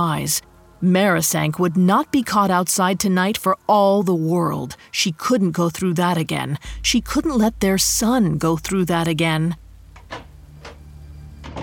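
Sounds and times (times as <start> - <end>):
speech: 0.0 - 10.2
low steady hum: 0.0 - 11.6
wooden palm log door of a mud brick house closing: 10.0 - 11.6.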